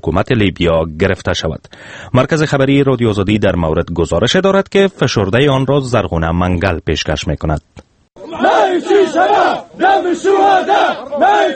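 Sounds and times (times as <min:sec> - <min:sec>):
speech: 0:00.0 - 0:11.5
opposition militia fighters cheering and chanting: 0:08.2 - 0:11.5.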